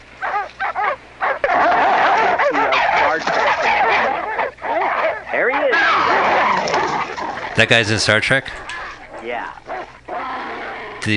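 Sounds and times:
busy noisy film background: 0:00.0 - 0:11.1
dog barking and yapping in a film: 0:00.2 - 0:07.2
speech: 0:07.6 - 0:09.6.

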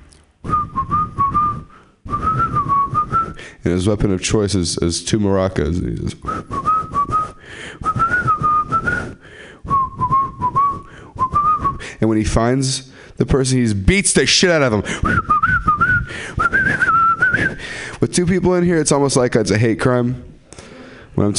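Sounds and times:
person whistling a tune: 0:00.4 - 0:03.4, 0:06.2 - 0:11.9, 0:15.0 - 0:17.7
breathy air noise: 0:00.4 - 0:03.7, 0:06.2 - 0:12.1, 0:12.8 - 0:13.2, 0:14.7 - 0:18.0, 0:20.4 - 0:21.2
speech: 0:03.6 - 0:06.6, 0:12.0 - 0:16.4, 0:18.0 - 0:20.3, 0:21.2 - 0:21.3.

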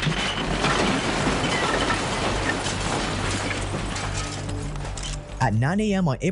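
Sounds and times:
building debris crashing and crumbling: 0:00.0 - 0:05.0
eight-story building collapsing during morning rush hour: 0:00.0 - 0:05.0
speech: 0:05.4 - 0:06.2.

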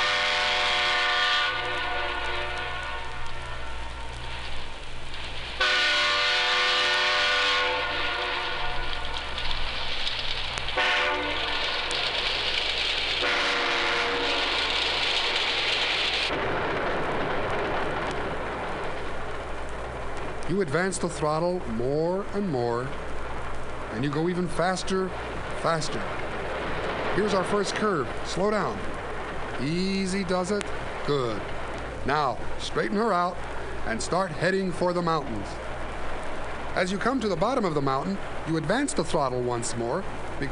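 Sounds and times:
loud train horn blasts at a train crossing: 0:00.0 - 0:04.4, 0:05.6 - 0:09.3, 0:10.8 - 0:11.9, 0:13.2 - 0:14.8
steady rumble of the moving train: 0:00.0 - 0:40.5
speech: 0:20.6 - 0:23.1, 0:23.9 - 0:26.2, 0:27.2 - 0:28.9, 0:29.6 - 0:35.6, 0:36.8 - 0:40.5.

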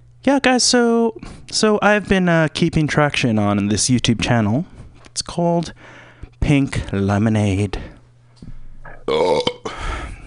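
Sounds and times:
speech: 0:00.3 - 0:07.9, 0:09.1 - 0:09.9
person burping with a gurgling belch: 0:08.9 - 0:09.8.

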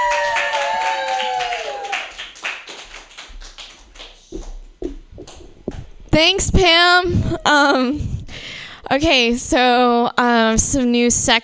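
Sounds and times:
audience clapping at a stand-up comedy show: 0:00.0 - 0:05.8
speech: 0:06.2 - 0:08.1, 0:08.9 - 0:11.4.

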